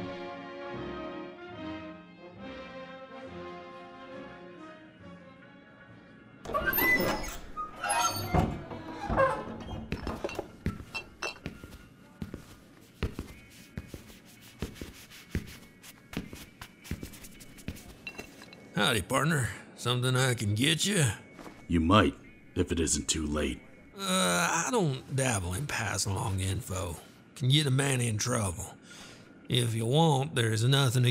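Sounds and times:
soft sustained music: 0.0 - 31.0
swinging saloon double doors creaking open: 6.4 - 11.5
light clinks of glassware: 9.9 - 11.8, 18.0 - 18.7
footsteps: 9.9 - 18.6
cloth wiping a wooden bar counter in a large saloon: 11.5 - 18.1
speech: 18.8 - 23.7, 24.7 - 28.7, 29.5 - 31.0.

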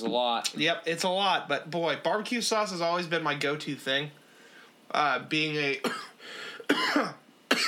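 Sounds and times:
speech: 0.0 - 4.2, 4.9 - 7.6
person coughing: 5.8 - 7.6.

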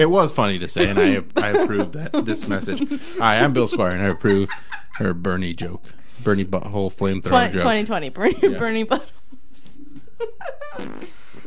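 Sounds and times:
speech: 0.0 - 9.2, 10.2 - 11.2
laughter: 0.6 - 6.4, 7.2 - 8.8, 10.2 - 10.9
wet sputtering raspberry imitating a fart: 10.8 - 11.4.

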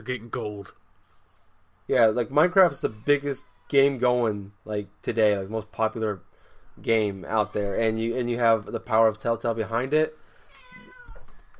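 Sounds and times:
speech: 0.0 - 0.9, 1.9 - 10.2
cat meowing: 10.4 - 11.4.

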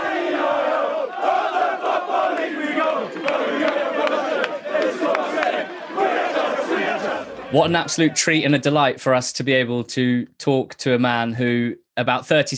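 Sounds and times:
football crowd cheering and chanting in celebration of promotion: 0.0 - 8.7
speech: 7.5 - 12.5.

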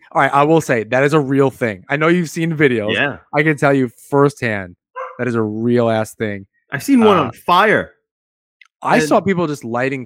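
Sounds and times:
speech: 0.1 - 8.0, 8.8 - 10.0
dog barking: 5.0 - 5.2.

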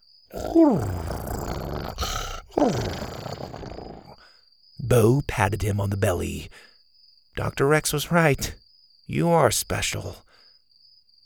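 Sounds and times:
speech: 0.3 - 1.0, 2.6 - 3.2, 4.9 - 6.7, 7.4 - 10.2
large creature purring with a deep rumble: 0.3 - 4.2
loud groaning calls sliding downward in pitch: 0.3 - 4.2.

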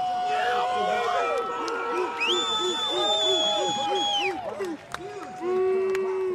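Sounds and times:
crowd cheering at diving competition: 0.0 - 6.3
people shouting in crowd: 0.0 - 6.3
high whistles from crowd: 2.1 - 4.4.

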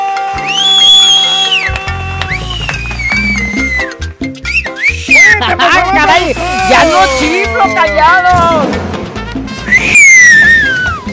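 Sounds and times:
loud human whistle: 0.0 - 5.4, 9.6 - 11.1
speech: 6.1 - 8.9.

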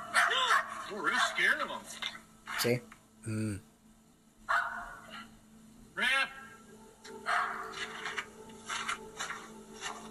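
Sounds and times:
dog barking played back from a video: 0.0 - 1.4, 4.5 - 5.3, 7.2 - 7.9
steady hum: 0.0 - 10.0
speech: 0.9 - 3.7.

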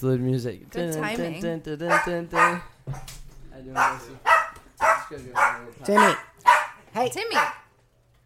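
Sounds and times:
speech: 0.0 - 4.4, 5.1 - 7.6
dog barking: 1.9 - 3.1, 3.7 - 7.8.

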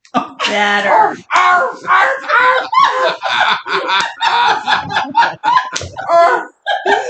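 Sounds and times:
laughter: 0.2 - 7.0
person imitating a dog barking with nasal yelping barks: 0.4 - 2.9
speech: 0.5 - 6.5.

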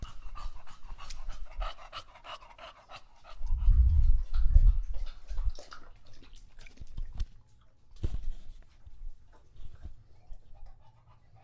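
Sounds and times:
English Bulldog panting heavily after a long walk: 0.0 - 5.5, 10.2 - 11.4.

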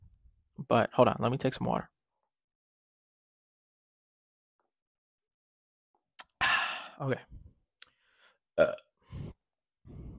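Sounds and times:
speech: 0.7 - 2.0, 7.0 - 7.4, 8.6 - 8.8
person burping: 8.6 - 9.0.

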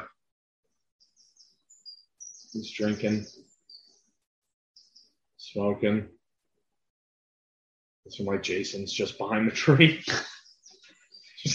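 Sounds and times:
birds chirping: 1.0 - 4.2, 4.8 - 6.1, 8.1 - 11.5
speech: 2.6 - 3.4, 5.5 - 6.2, 8.1 - 10.4.

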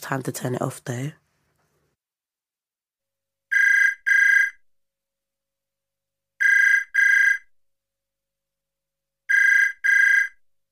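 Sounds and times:
speech: 0.0 - 1.2
house telephone ringing with bright trilling double rings: 3.5 - 4.6, 6.4 - 7.5, 9.3 - 10.4.

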